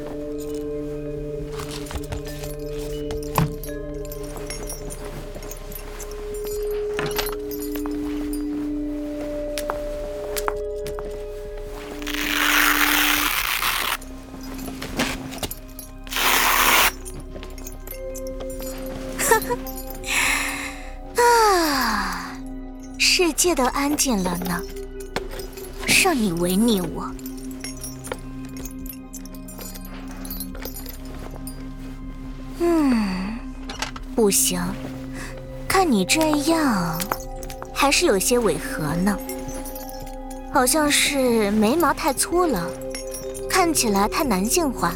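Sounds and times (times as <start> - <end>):
rummaging clatters and jingles: 0.0 - 32.6, 33.4 - 44.9
adhesive tape being pulled and torn: 12.0 - 14.0
speech: 23.4 - 24.8, 26.0 - 27.2, 34.2 - 34.9, 35.9 - 37.2, 37.8 - 39.2, 40.6 - 42.9, 43.6 - 44.9.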